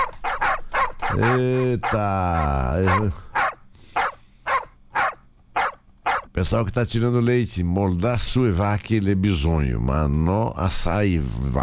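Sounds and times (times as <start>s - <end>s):
pack of dogs barking: 0.0s - 6.4s
speech: 1.1s - 3.3s, 6.4s - 11.6s.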